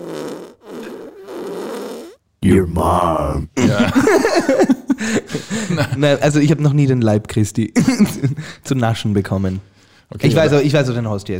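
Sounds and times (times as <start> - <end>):
fart sound effect from a soundboard button: 0.0 - 2.2
speech: 2.4 - 11.3
laughter: 3.6 - 6.3, 7.8 - 8.6.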